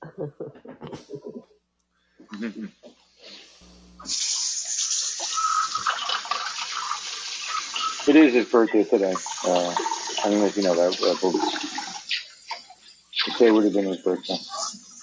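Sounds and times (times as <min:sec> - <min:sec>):
speech: 0:00.2 - 0:01.4, 0:02.4 - 0:02.8, 0:04.0 - 0:04.6, 0:08.1 - 0:11.8, 0:13.4 - 0:14.6
tap water gushing into a kitchen sink: 0:04.1 - 0:12.1.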